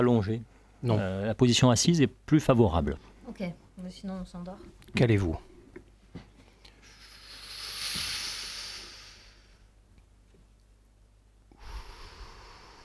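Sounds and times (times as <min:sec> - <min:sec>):
speech: 0:00.0 - 0:05.5
slow deep breathing: 0:06.6 - 0:09.7, 0:11.5 - 0:12.8.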